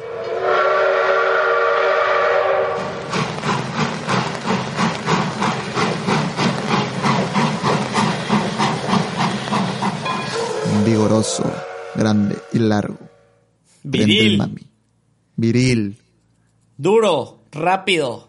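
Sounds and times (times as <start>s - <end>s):
steam train whistle: 0.0s - 3.0s, 10.1s - 14.4s
steam train chugging puffs of steam: 0.0s - 13.4s
speech: 11.2s - 13.1s, 13.8s - 14.6s, 15.4s - 16.0s, 16.8s - 18.2s.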